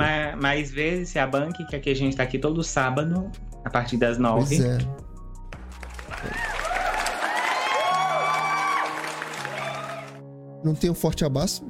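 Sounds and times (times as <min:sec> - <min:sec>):
speech: 0:00.4 - 0:05.0, 0:06.2 - 0:06.4, 0:10.6 - 0:11.6
crowd clapping steadily: 0:05.6 - 0:10.2
crowd cheering with whoops and shouts: 0:06.1 - 0:10.2.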